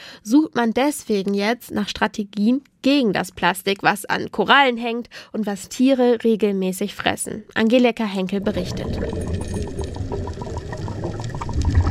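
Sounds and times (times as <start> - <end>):
speech: 0.2 - 9.9
underwater bubbles from divers rising off the coast of Thailand: 8.3 - 11.8.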